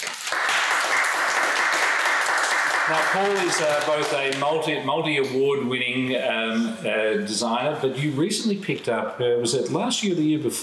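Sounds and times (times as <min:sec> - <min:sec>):
room full of people applauding: 0:00.0 - 0:04.4
speech: 0:02.9 - 0:10.6.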